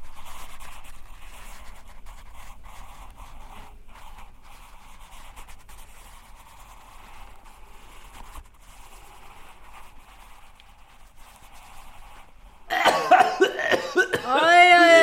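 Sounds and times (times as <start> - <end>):
person coughing: 12.7 - 15.0
person speaking: 13.0 - 15.0.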